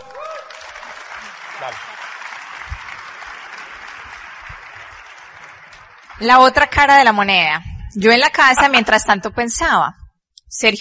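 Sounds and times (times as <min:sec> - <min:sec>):
audience applause: 0:00.0 - 0:07.1
speech: 0:01.6 - 0:02.0, 0:06.2 - 0:10.7.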